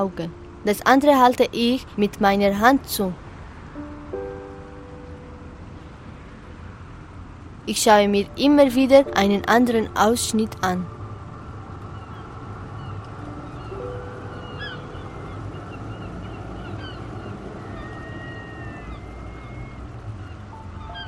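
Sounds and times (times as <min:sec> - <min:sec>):
speech: 0:00.0 - 0:03.2, 0:07.7 - 0:11.0
dense steady noise: 0:00.0 - 0:21.0
flightless birds honking and whistling: 0:11.9 - 0:21.0.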